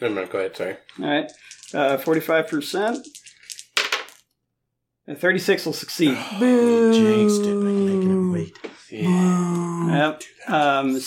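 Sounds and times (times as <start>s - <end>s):
speech: 0.0s - 3.3s, 5.1s - 11.0s
dice clattering and tumbling across a hard table: 1.0s - 4.3s.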